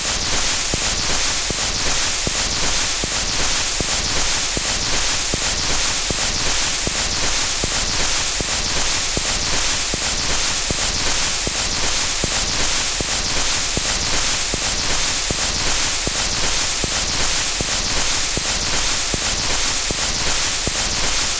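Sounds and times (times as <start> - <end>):
crackles and soft ticks from an old 78 rpm shellac record: 0.2 - 21.3.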